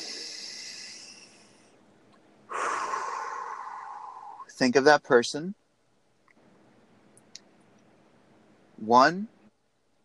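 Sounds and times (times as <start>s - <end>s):
deep breath: 0.0s - 1.8s, 2.5s - 4.5s
speech: 4.6s - 5.6s, 8.9s - 9.3s.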